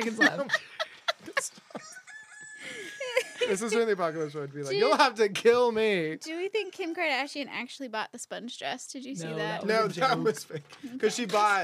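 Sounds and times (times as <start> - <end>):
speech: 0.0 - 0.7, 3.5 - 11.6
laughter: 0.0 - 5.1, 9.7 - 11.6
several roosters crowing in a ragged chorus: 1.8 - 3.6.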